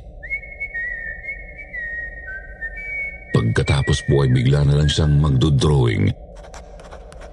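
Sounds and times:
person whistling a wavering tune: 0.2 - 3.9
speech: 3.5 - 6.2.

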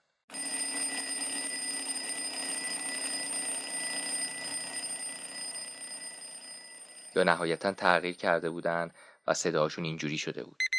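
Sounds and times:
old-fashioned alarm clock ringing: 0.3 - 8.4
speech: 7.2 - 10.6.

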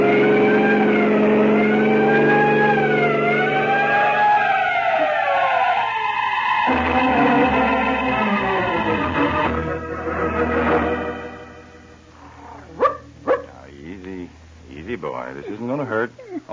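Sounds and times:
siren wailing: 0.0 - 11.3
speeding car engine roaring: 0.0 - 13.7.

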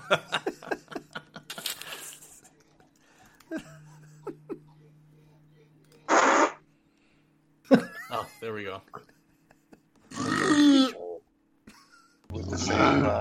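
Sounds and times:
people laughing: 0.0 - 1.8, 2.5 - 5.4, 7.7 - 10.1
steady low hum: 0.0 - 13.1
speech: 0.1 - 0.5, 8.5 - 9.1
buzzy fart sound effect from a soundboard: 6.1 - 6.6.

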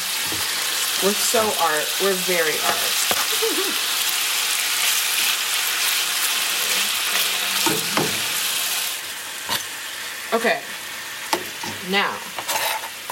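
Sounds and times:
chicken frying in a hot pan: 0.0 - 13.1
speech: 0.3 - 4.0, 10.3 - 10.7, 11.8 - 12.3.

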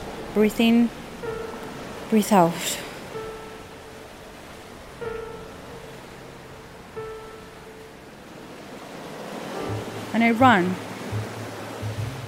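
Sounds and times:
ocean surf rolling onto a shore: 0.0 - 12.2
speech: 0.4 - 1.0, 2.1 - 2.8, 10.2 - 10.8
faint tonal chime: 1.2 - 8.0.

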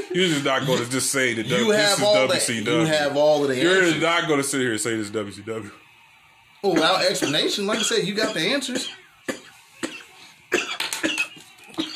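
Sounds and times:
man coughing: 0.0 - 1.7, 6.8 - 11.9
speech: 0.1 - 5.9, 6.6 - 9.0.

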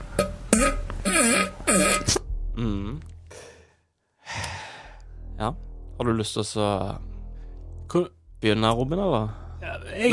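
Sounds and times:
loud fart noises, wet and rasping with wavering pitch: 0.2 - 2.3
speech: 5.4 - 7.1, 7.9 - 10.1.

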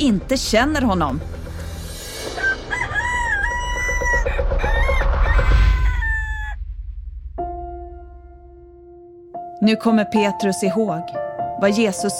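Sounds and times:
speech: 0.0 - 1.4, 9.6 - 12.1
rooster crowing: 2.3 - 6.6.

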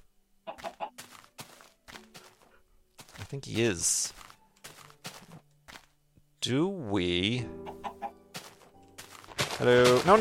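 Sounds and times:
video game chicken clucking: 0.4 - 3.2, 7.5 - 8.6
speech: 3.3 - 4.2, 6.4 - 7.8, 9.6 - 10.2.

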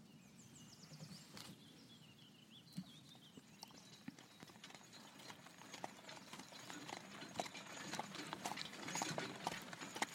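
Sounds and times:
faint birdsong: 0.0 - 8.2
horse hooves clip-clopping: 2.8 - 10.1
horse-drawn carriage rolling with a low rumbling: 5.2 - 10.1.

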